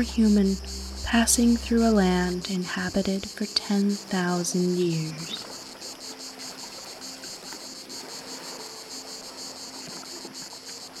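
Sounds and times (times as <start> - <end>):
faint low rumble of surf or wind: 0.0 - 4.2
speech: 0.0 - 5.5
dense chorus of cicadas chirping in unison: 0.0 - 10.9.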